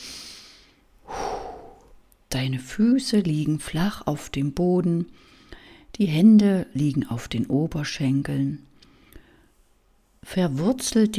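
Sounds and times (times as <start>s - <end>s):
deep breath in and out during a guided meditation: 0.0s - 2.0s, 8.8s - 9.7s
speech: 2.4s - 5.4s, 6.0s - 8.7s, 10.2s - 11.1s.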